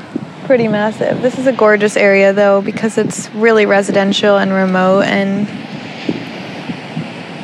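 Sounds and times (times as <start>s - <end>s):
soft low thumps from ocean waves breaking: 0.0s - 7.4s
steady broadband wash of ocean surf: 0.0s - 7.4s
speech: 0.5s - 5.8s.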